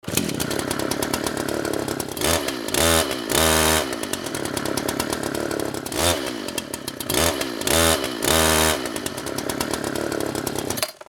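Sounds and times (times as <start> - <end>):
chainsaw revving: 0.0 - 11.0.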